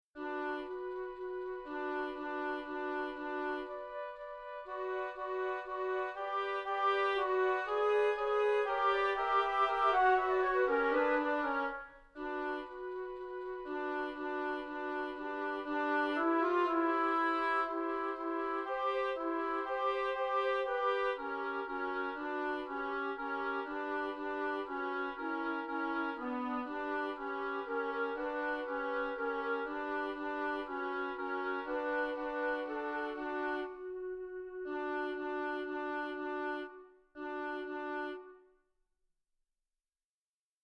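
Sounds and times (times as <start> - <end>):
woodwind: 0.2 - 38.6.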